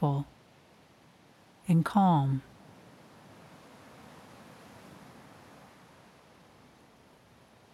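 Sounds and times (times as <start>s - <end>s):
speech: 0.0s - 0.3s, 1.7s - 2.5s
ocean waves crashing on a stone breakwater: 2.5s - 7.7s.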